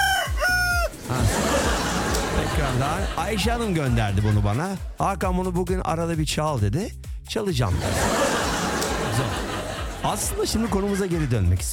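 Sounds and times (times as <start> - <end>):
rooster crowing: 0.0 - 0.9
laughter: 1.0 - 4.8, 7.7 - 11.7
speech: 2.7 - 8.2, 10.0 - 11.7.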